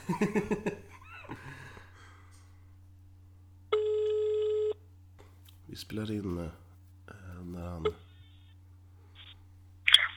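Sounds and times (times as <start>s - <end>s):
laughter: 0.0s - 1.8s
low steady hum: 0.0s - 10.1s
speech: 0.1s - 0.9s, 5.8s - 6.6s, 7.4s - 8.1s
person breathing: 1.3s - 2.8s
ringback tone of an outgoing phone call: 3.7s - 4.8s.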